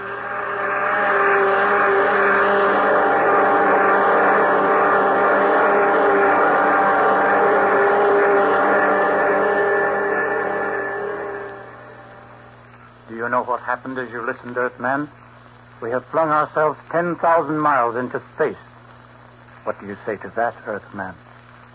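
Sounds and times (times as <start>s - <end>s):
spaceship jet dynamos roaring: 0.0s - 12.6s
speech: 13.8s - 15.2s, 15.8s - 18.7s, 19.6s - 21.2s.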